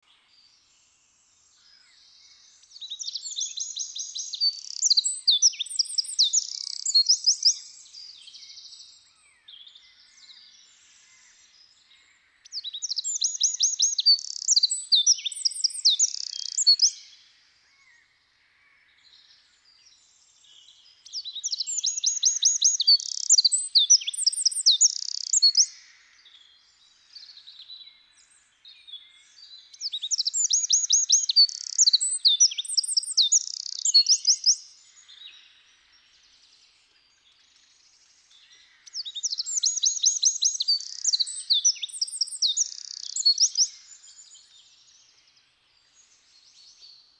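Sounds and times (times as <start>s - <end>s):
Eurasian wren singing: 3.0s - 7.8s, 12.7s - 17.0s, 21.1s - 25.7s, 29.8s - 34.6s, 38.8s - 44.3s.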